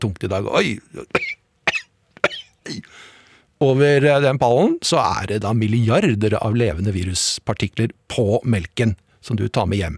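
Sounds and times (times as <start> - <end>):
speech: 0.0 - 1.4, 2.7 - 9.9
person fake coughing harshly: 1.0 - 2.9.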